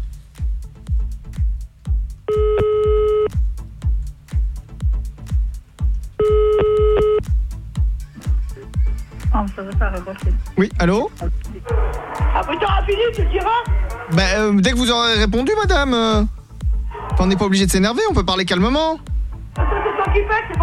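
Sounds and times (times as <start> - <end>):
thumping rhythmic beat: 0.0 - 20.6
telephone ringback tones of a call placed again: 2.3 - 3.3, 6.2 - 7.2
speech: 9.6 - 16.4, 17.2 - 19.1, 20.2 - 20.6.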